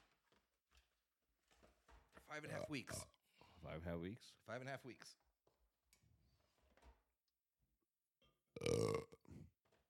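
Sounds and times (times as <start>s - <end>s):
speech: 2.3s - 5.2s
loud drawn-out burp: 8.6s - 9.5s.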